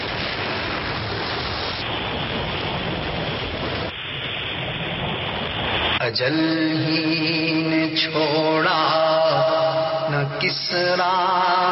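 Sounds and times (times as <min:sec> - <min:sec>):
heavy rain falling: 0:00.0 - 0:11.7
speech: 0:06.1 - 0:11.7.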